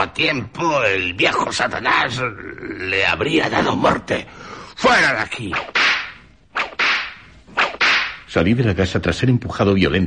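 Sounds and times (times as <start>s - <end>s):
speech: 0.0s - 5.8s, 8.3s - 10.0s
whip lashes swishing and cracking: 5.5s - 8.3s.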